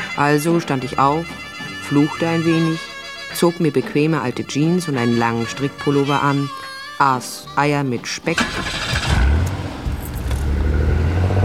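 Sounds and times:
speech: 0:00.2 - 0:08.8
car driving with low engine rumble: 0:08.3 - 0:11.4.

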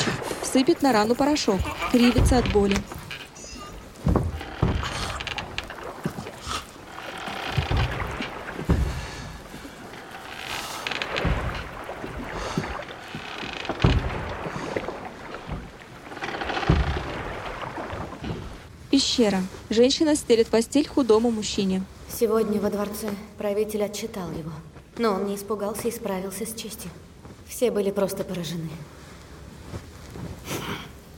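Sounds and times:
man rowing a boat with oars splashing in water: 0:00.0 - 0:24.2
speech: 0:00.5 - 0:03.0, 0:19.2 - 0:29.0.

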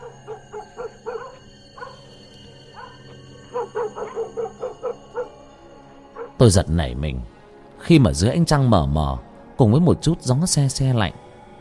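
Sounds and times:
dog barking toward a gate at night: 0:00.0 - 0:02.1, 0:02.7 - 0:05.4, 0:06.2 - 0:06.4
speech: 0:06.4 - 0:11.2.

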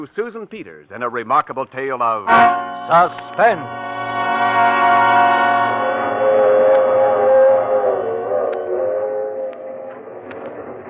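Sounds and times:
speech: 0:00.0 - 0:05.6
train rumbling along the tracks: 0:02.3 - 0:10.0.

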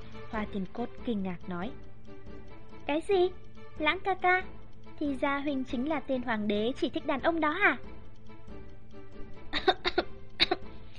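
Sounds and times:
speech: 0:00.3 - 0:02.2, 0:02.9 - 0:07.9
embarrassed flustered man dry coughing: 0:09.6 - 0:10.7.

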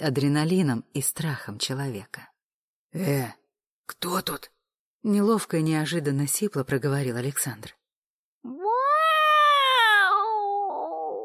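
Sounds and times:
speech: 0:00.0 - 0:02.3, 0:02.9 - 0:07.8
cat yowling: 0:08.5 - 0:11.2.

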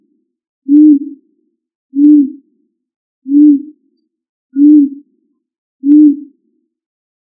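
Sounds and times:
pigeon cooing: 0:00.7 - 0:01.2, 0:03.3 - 0:03.7, 0:04.6 - 0:05.0, 0:05.8 - 0:06.3.

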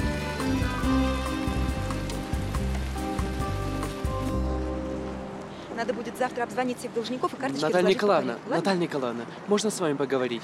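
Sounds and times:
very heavy downpour of rain: 0:00.0 - 0:10.4
speech: 0:05.8 - 0:10.4.

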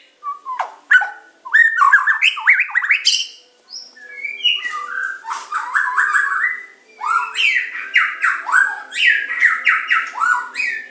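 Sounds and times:
Oriental magpie-robin song with whistled, squeaky and warbled phrases: 0:00.2 - 0:10.8.

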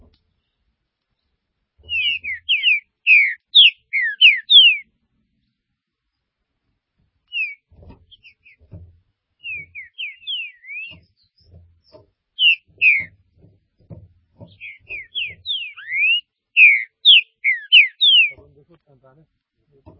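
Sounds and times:
Green-winged saltator song of slurred whistled notes: 0:01.8 - 0:04.9, 0:07.3 - 0:08.7, 0:09.4 - 0:13.2, 0:14.4 - 0:18.4.

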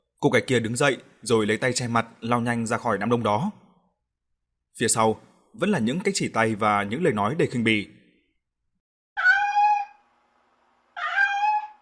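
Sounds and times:
speech: 0:00.2 - 0:03.6, 0:04.8 - 0:08.0
cat meowing: 0:09.2 - 0:10.0, 0:11.0 - 0:11.8.

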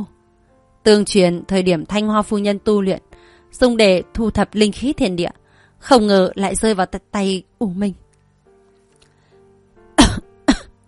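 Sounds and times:
speech: 0:00.8 - 0:08.0
person dry coughing: 0:10.0 - 0:10.8.

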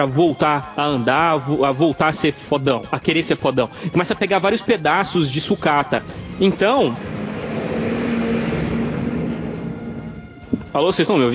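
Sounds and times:
speech: 0:00.0 - 0:07.2, 0:10.8 - 0:11.3
truck passing outside with low engine rumble: 0:03.7 - 0:11.3
broadband road noise from passing truck: 0:05.0 - 0:11.3.

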